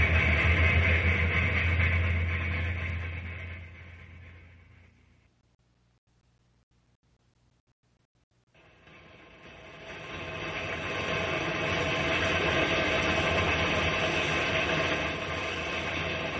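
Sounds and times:
old train engine chugging and rattling in a rainstorm: 0:00.0 - 0:05.3, 0:08.6 - 0:16.3.

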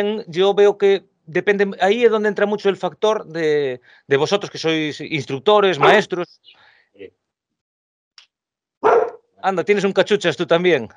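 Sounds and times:
speech: 0:00.0 - 0:07.2, 0:09.4 - 0:10.9
dog barking: 0:05.8 - 0:06.0, 0:08.8 - 0:09.3.

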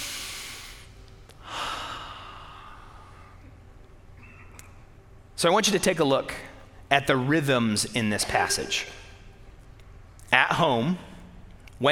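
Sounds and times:
breathy swell: 0:00.0 - 0:03.6
speech: 0:05.4 - 0:09.0, 0:10.5 - 0:11.1.

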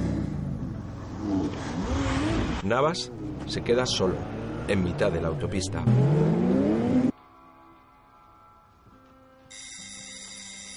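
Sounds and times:
car engines revving and pulling away: 0:00.0 - 0:07.1
speech: 0:02.6 - 0:06.4.

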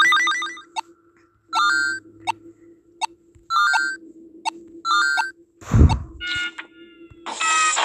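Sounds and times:
electronic alarm ringing in bright high tones: 0:00.0 - 0:00.8, 0:01.5 - 0:02.4, 0:03.0 - 0:04.0, 0:04.8 - 0:05.3
garbled distorted beeps: 0:00.0 - 0:00.9, 0:01.5 - 0:02.4, 0:03.0 - 0:06.6.

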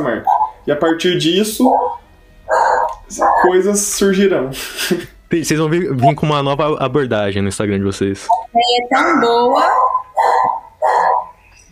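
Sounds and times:
speech: 0:00.0 - 0:02.0, 0:03.1 - 0:09.8
happy dog barking loudly: 0:00.2 - 0:03.6, 0:09.0 - 0:11.4
laughter: 0:04.5 - 0:05.2.

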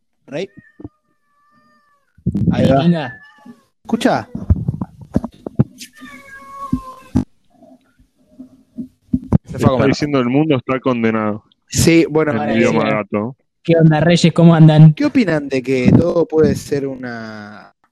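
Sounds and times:
speech: 0:00.3 - 0:00.8, 0:02.5 - 0:04.5, 0:09.6 - 0:17.7
cat in heat yowling: 0:00.3 - 0:04.5, 0:05.8 - 0:07.2
soft cat noises: 0:00.3 - 0:04.9, 0:05.6 - 0:08.7.

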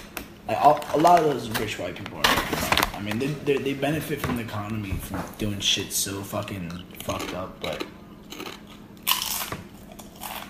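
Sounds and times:
speech: 0:00.5 - 0:08.5
loud crunchy bite into food: 0:07.0 - 0:10.4.

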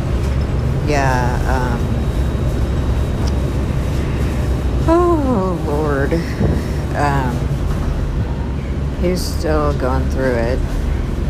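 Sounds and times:
city bus engine and road rumble heard from inside: 0:00.0 - 0:11.2
rising tonal whine: 0:00.0 - 0:11.2
speech: 0:00.9 - 0:02.0, 0:06.1 - 0:07.4, 0:09.0 - 0:10.8.

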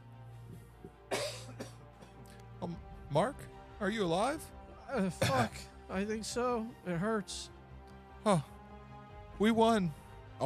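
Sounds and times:
person coughing harshly and wetly: 0:01.1 - 0:02.2, 0:05.2 - 0:05.7
speech: 0:02.6 - 0:07.6, 0:08.2 - 0:08.5, 0:09.4 - 0:10.4.

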